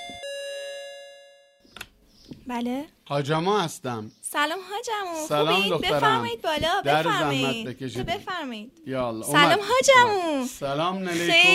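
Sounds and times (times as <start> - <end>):
doorbell ringing with a two-tone chime: 0.0 - 1.7
speech: 2.5 - 11.5.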